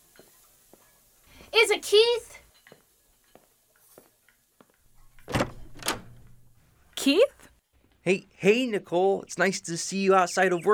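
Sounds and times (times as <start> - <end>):
speech: 1.5 - 2.4, 7.1 - 7.4, 8.1 - 10.7
front door opening with clicks and rattles: 4.9 - 6.6.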